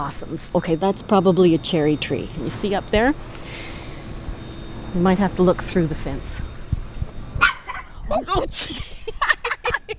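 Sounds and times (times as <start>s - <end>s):
speech: 0.0s - 3.6s, 4.9s - 6.5s, 8.1s - 9.9s
dog barking and yipping behind a fence: 7.4s - 8.0s
laughter: 8.5s - 9.9s.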